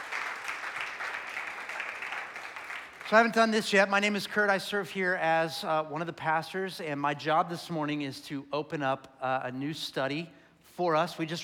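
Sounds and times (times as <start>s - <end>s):
church congregation applauding: 0.0s - 3.5s
speech: 3.1s - 11.4s.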